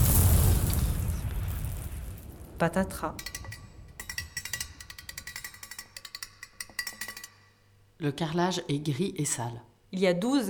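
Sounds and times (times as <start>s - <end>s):
explosion sound effect with rumbling boom and hissing crackling wash: 0.0s - 3.2s
speech: 2.6s - 3.3s, 8.0s - 10.4s.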